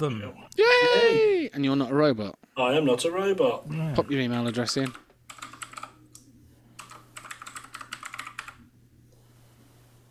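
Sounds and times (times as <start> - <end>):
speech: 0.0 - 5.0
typing on a mechanical keyboard: 4.4 - 6.0, 6.8 - 8.6.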